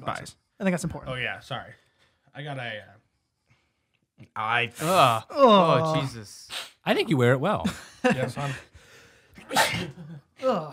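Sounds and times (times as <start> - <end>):
speech: 0.0 - 3.0, 4.2 - 8.7, 9.4 - 10.7
loud sneeze: 9.4 - 10.1.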